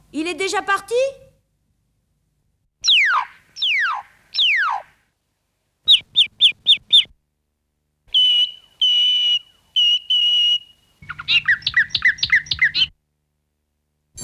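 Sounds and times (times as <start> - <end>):
speech: 0.1 - 1.2
bird song: 2.8 - 5.0, 5.9 - 7.1, 8.1 - 13.0.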